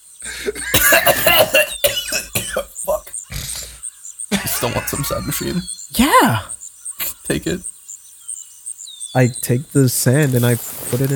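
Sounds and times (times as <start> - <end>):
person gasping between coughs: 0.2 - 0.7
laughter: 0.2 - 1.8, 2.7 - 7.6
person coughing hard in a ragged fit: 0.3 - 3.8, 4.4 - 5.6
speech: 5.0 - 6.6, 7.3 - 7.7, 9.2 - 11.1.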